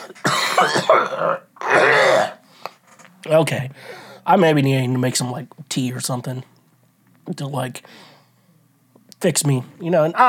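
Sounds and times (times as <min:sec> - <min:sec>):
person coughing harshly: 0:00.0 - 0:02.4
speech: 0:00.1 - 0:02.4, 0:03.2 - 0:06.5, 0:07.3 - 0:08.1, 0:09.2 - 0:10.2.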